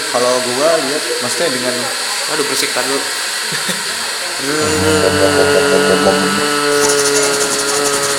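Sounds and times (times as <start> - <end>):
speech: 0.1 - 6.9
laughter: 3.5 - 7.3
blender motor whirring: 4.5 - 8.1.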